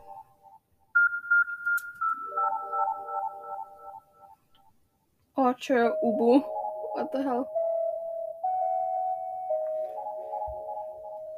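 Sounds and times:
electronic notification chime with steady high tone: 1.1 - 4.2, 5.9 - 11.3
speech: 5.5 - 7.6.

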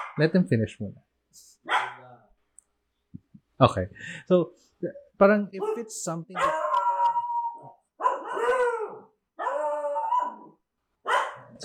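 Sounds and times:
speech: 0.2 - 1.5, 3.6 - 6.6
several dogs howling and barking: 6.4 - 11.6.

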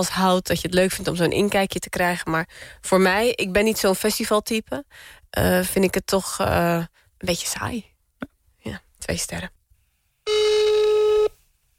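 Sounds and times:
speech: 0.0 - 7.9, 8.6 - 9.6
loud steady electronic beep: 10.3 - 11.3.

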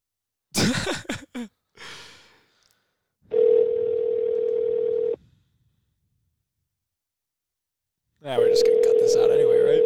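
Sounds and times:
person coughing: 0.6 - 1.5
breathy sigh: 1.8 - 2.8
phone dial tone while calling back: 3.3 - 5.2, 8.4 - 9.8.

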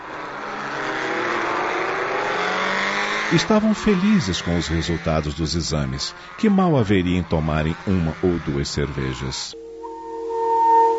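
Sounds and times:
motorcycle engine revving and accelerating away: 0.0 - 8.6
speech: 3.3 - 9.6.

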